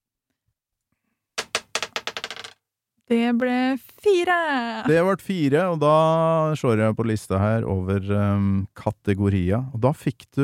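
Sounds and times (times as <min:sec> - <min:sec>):
die thrown onto a table: 0:01.4 - 0:02.6
speech: 0:03.1 - 0:10.4.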